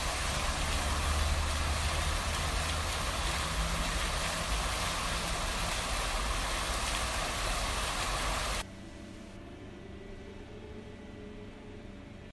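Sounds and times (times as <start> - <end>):
waterfall gushing: 0.0 - 8.6.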